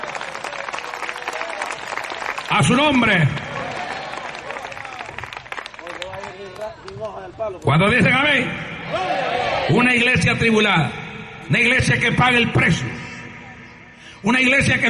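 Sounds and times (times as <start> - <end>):
audience applauding at a church service: 0.0 - 7.2
speech: 2.5 - 3.4, 6.7 - 13.0, 14.2 - 14.8.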